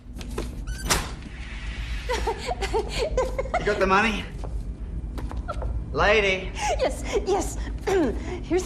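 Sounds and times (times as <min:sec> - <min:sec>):
low steady hum: 0:00.0 - 0:08.6
large metal outer door squeaking open: 0:00.6 - 0:01.5
speech: 0:02.4 - 0:04.4, 0:05.9 - 0:08.6.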